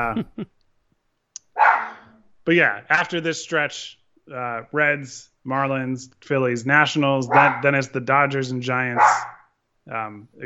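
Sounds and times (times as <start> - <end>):
speech: 0.0 - 0.6, 2.4 - 9.3, 9.9 - 10.4
small male dog barking: 1.6 - 2.0, 7.3 - 7.7, 9.0 - 9.4.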